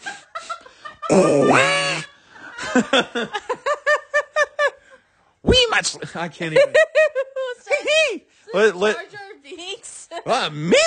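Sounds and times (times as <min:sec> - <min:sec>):
laughter: 0:00.0 - 0:05.1, 0:06.4 - 0:08.2
speech: 0:01.1 - 0:01.8, 0:02.8 - 0:03.4, 0:05.4 - 0:06.9, 0:08.0 - 0:09.2, 0:10.2 - 0:10.8
person imitating a cartoon duck with raspy quacking squawks: 0:01.1 - 0:02.0.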